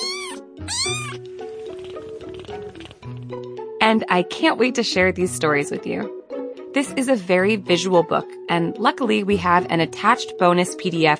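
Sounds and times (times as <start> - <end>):
foster kittens meowing: 0.0 - 1.2
speech: 0.7 - 1.3, 3.8 - 6.2, 6.8 - 11.1.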